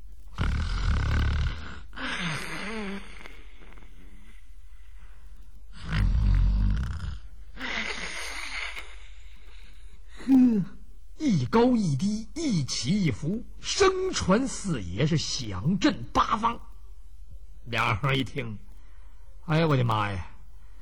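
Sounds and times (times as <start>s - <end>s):
man's voice imitating loud rumbling snores: 0.3s - 3.8s, 5.7s - 8.9s
speech: 11.5s - 16.7s, 17.7s - 18.7s, 19.5s - 20.3s.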